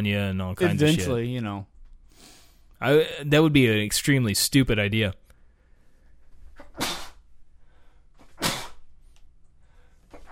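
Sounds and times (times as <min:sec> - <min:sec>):
speech: 0:00.0 - 0:05.2
loud sneezes with a breathy hiss: 0:06.6 - 0:07.2, 0:08.3 - 0:08.8, 0:10.1 - 0:10.3.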